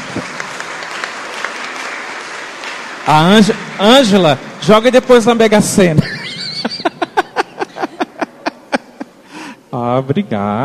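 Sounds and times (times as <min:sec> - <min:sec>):
audience applause: 0:00.0 - 0:08.4
speech: 0:00.2 - 0:00.4, 0:03.1 - 0:06.2, 0:10.0 - 0:10.6
laughter: 0:05.9 - 0:09.4.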